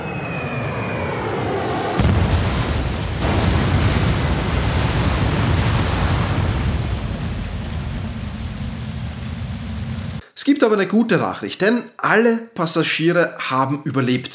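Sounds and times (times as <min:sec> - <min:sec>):
aircraft engine whining: 0:00.0 - 0:02.2, 0:08.3 - 0:10.2
explosion and debris rumbling roar: 0:00.0 - 0:10.2
plane crash burst: 0:00.0 - 0:10.2
speech: 0:10.6 - 0:14.3.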